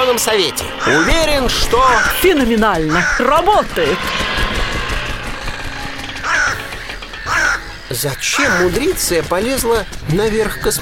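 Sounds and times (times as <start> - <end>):
crows cawing perched on antennas atop a spacecraft: 0.0 - 9.1, 9.8 - 10.7
speech: 0.1 - 4.5, 7.9 - 10.7
steady rumble: 1.2 - 8.1.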